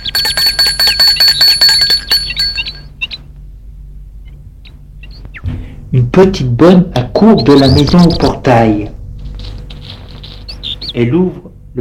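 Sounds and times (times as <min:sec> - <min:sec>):
bell ringing at the garden gate of a white house: 0:00.0 - 0:03.0
speech: 0:06.2 - 0:09.0, 0:11.0 - 0:11.7.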